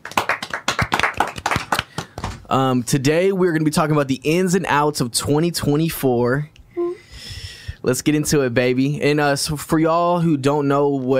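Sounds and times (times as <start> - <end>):
small group clapping in applause: 0.0 - 2.5
speech: 2.5 - 6.5, 7.8 - 11.1.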